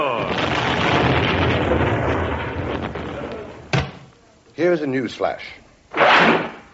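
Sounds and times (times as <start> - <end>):
explosion sound effect in a radio comedy sketch: 0.0 - 4.0
speech: 4.6 - 5.6
short sharp crack: 6.0 - 6.6.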